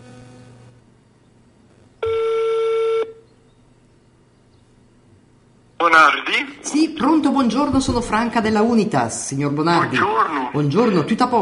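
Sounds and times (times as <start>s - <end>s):
low hum: 0.0s - 11.4s
electronic telephone tone while dialing a call: 2.0s - 3.2s
speech: 5.8s - 11.4s.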